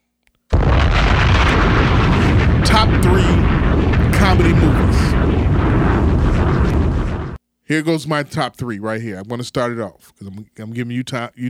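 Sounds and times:
bomb explosion sound effect: 0:00.5 - 0:07.4
speech: 0:04.4 - 0:05.8, 0:07.7 - 0:11.4.

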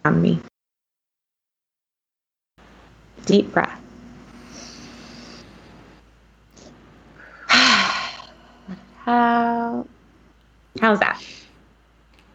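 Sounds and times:
speech: 0:00.0 - 0:00.5, 0:03.3 - 0:03.8, 0:09.1 - 0:09.9, 0:10.8 - 0:11.4
person yawning with a low growly bear-like voice: 0:07.3 - 0:08.9.

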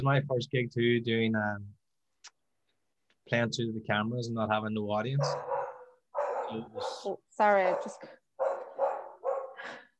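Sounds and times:
speech: 0:00.0 - 0:02.4, 0:03.3 - 0:05.5, 0:06.5 - 0:08.2
dog yelping: 0:05.2 - 0:07.1, 0:07.7 - 0:09.6
dog barking: 0:05.2 - 0:09.7.

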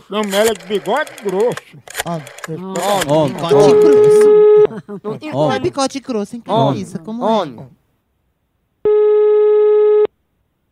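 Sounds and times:
speech: 0:00.1 - 0:07.8
laughter: 0:00.2 - 0:07.6
telephone ringback tone on an outgoing call: 0:03.3 - 0:04.7, 0:08.9 - 0:10.1.

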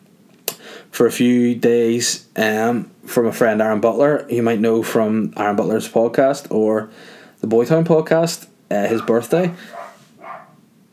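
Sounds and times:
speech: 0:00.9 - 0:09.8
single dog bark: 0:08.9 - 0:10.6.

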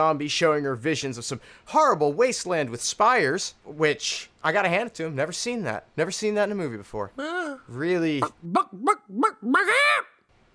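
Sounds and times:
speech: 0:00.0 - 0:10.5
voice imitating a chicken clucking and squawking: 0:07.2 - 0:10.5.

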